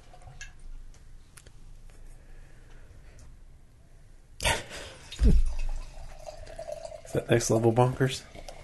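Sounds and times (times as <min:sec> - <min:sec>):
dark anniversary ale pouring into a glass: 0:04.9 - 0:08.6
speech: 0:05.2 - 0:05.4, 0:07.3 - 0:08.3.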